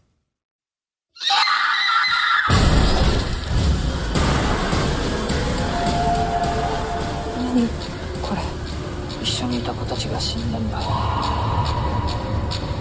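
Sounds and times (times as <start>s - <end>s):
shrill piercing scream in a horror film trailer: 1.2s - 2.6s, 10.8s - 12.3s
dramatic noise and music of a horror trailer: 2.5s - 12.8s.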